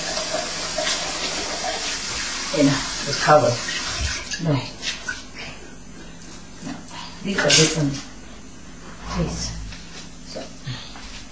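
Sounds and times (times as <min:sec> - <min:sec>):
tap water running while rinsing sticky slimy food: 0:00.0 - 0:04.4
speech: 0:02.6 - 0:03.7, 0:04.4 - 0:04.8, 0:07.2 - 0:08.1, 0:09.2 - 0:09.5.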